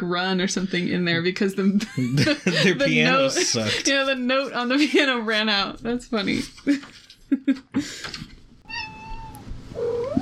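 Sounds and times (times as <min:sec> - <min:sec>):
speech: 0:00.0 - 0:08.3
laughter: 0:01.8 - 0:05.4, 0:06.3 - 0:08.0
cat trilling: 0:08.6 - 0:10.2.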